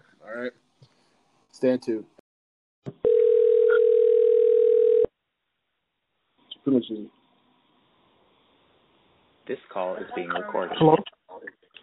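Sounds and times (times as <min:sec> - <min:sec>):
speech: 0:00.2 - 0:00.6, 0:01.6 - 0:02.1, 0:06.6 - 0:07.2, 0:09.5 - 0:11.2
telephone dial tone: 0:03.0 - 0:05.1.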